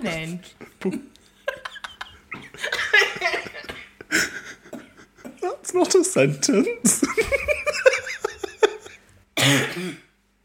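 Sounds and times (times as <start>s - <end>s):
speech: 0.0s - 1.1s, 5.8s - 7.6s
person laughing: 0.6s - 5.5s, 6.9s - 9.0s
person coughing: 9.4s - 10.1s.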